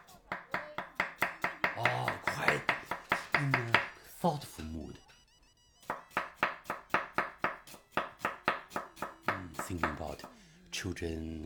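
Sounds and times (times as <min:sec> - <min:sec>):
knife chopping vegetables on a cutting board: 0:00.0 - 0:04.0, 0:05.9 - 0:10.3
speech: 0:04.2 - 0:05.1, 0:09.7 - 0:11.4.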